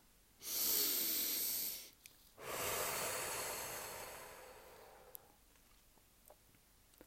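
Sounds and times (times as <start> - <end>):
slow deep breathing in and out: 0.4 - 5.4.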